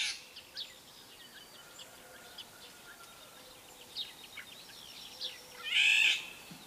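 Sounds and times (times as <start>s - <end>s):
faint background of other birds chirping: 0.0s - 6.6s
Eurasian golden oriole harsh hoarse cat-like squawk: 5.6s - 6.3s.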